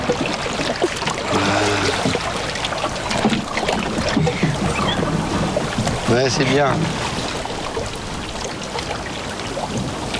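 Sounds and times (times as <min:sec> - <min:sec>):
paddle strokes splashing through water from a small boat: 0:00.0 - 0:10.1
brief hollow creak: 0:03.1 - 0:07.2
speech: 0:06.1 - 0:07.0.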